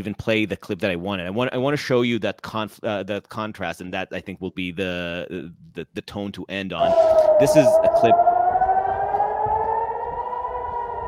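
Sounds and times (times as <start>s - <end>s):
speech: 0.0s - 8.3s
air raid siren wailing at night in Jerusalem: 6.8s - 11.0s.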